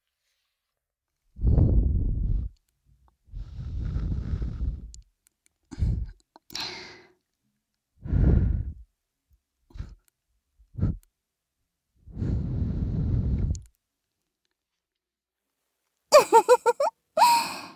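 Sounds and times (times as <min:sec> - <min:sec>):
soft breath blown into the ear: 0:01.4 - 0:02.6, 0:03.3 - 0:05.0, 0:08.0 - 0:08.8, 0:12.1 - 0:13.6
laughter: 0:16.2 - 0:17.6.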